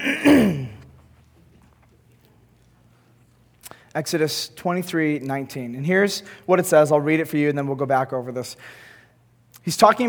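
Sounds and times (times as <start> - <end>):
throat clearing sliding into a low voiced grunt: 0.0 - 1.0
speech: 4.0 - 8.9, 9.6 - 10.0.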